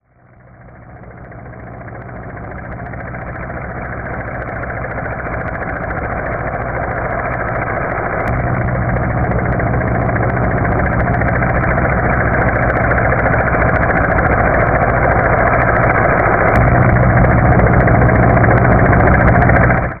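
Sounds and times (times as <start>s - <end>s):
helicopter approaching: 0.2s - 19.9s.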